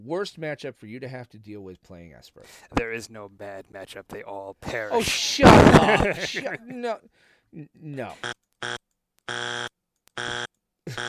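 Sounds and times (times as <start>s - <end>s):
speech: 0.0s - 9.6s
laughter: 4.7s - 6.8s, 10.9s - 11.0s
harsh loud buzzer blaring: 8.2s - 11.0s.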